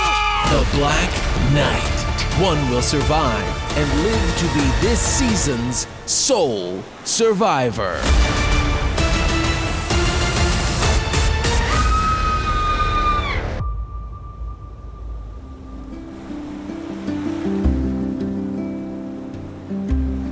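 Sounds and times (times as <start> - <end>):
crashing ocean waves: 0.0 - 20.3
speech: 0.5 - 8.5
wind: 3.4 - 11.0, 11.7 - 20.3.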